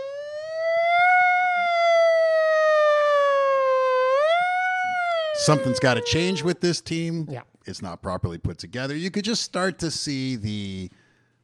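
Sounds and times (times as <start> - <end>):
voice imitating a siren: 0.0 - 7.2
speech: 5.5 - 11.0.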